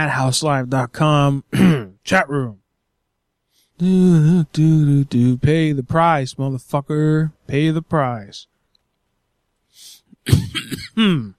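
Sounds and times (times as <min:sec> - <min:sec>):
speech: 0:00.0 - 0:02.6, 0:03.8 - 0:08.5, 0:09.8 - 0:11.3
person coughing: 0:01.5 - 0:02.0, 0:10.2 - 0:11.3.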